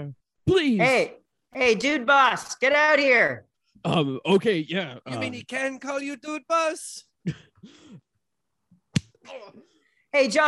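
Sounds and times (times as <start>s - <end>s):
speech: 0.0s - 7.8s, 9.3s - 10.4s
hand slapping a face: 8.9s - 9.2s.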